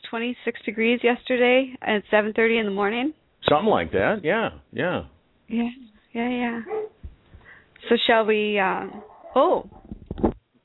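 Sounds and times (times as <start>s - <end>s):
speech: 0.1s - 6.9s, 7.8s - 9.8s
dogs barking and yelping excitedly: 6.6s - 7.0s, 8.7s - 9.6s.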